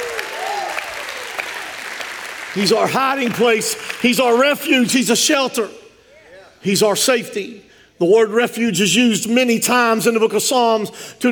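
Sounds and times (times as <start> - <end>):
audience applause: 0.0 - 4.5
speech: 2.6 - 5.8, 6.6 - 11.3.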